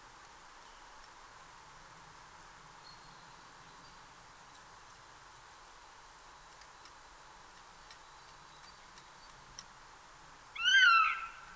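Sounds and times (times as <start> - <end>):
Eurasian jay Garrulus glandarius mewing call: 10.5 - 11.5.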